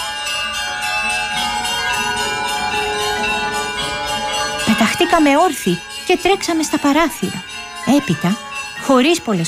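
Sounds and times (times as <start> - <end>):
church bells ringing: 0.0 - 9.4
laughter: 0.2 - 9.4
speech: 5.0 - 9.4.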